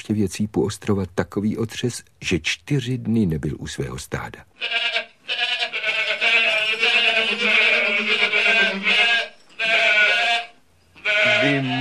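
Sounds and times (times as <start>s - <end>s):
speech: 0.0s - 5.1s, 11.4s - 11.7s
goats bleating: 4.6s - 11.7s.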